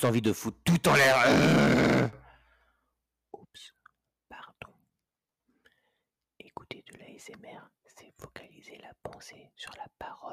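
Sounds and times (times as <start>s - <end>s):
speech: 0.0s - 2.2s, 3.6s - 3.8s, 6.7s - 10.3s
breathy ASMR whispering: 3.4s - 4.8s, 6.4s - 10.3s.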